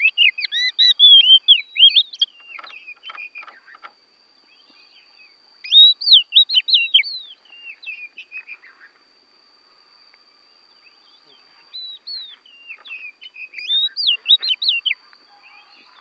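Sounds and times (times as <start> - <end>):
Oriental magpie-robin from Borneo singing: 0.0 - 3.9, 4.5 - 8.9, 11.7 - 15.9.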